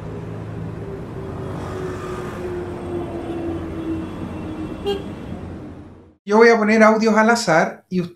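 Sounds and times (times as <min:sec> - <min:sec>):
cars passing on the street in front of a home: 0:00.0 - 0:06.2
speech: 0:04.8 - 0:05.1, 0:06.3 - 0:08.1.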